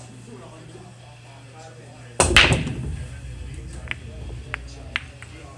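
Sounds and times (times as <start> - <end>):
pool break in a game room: 2.2 - 5.5.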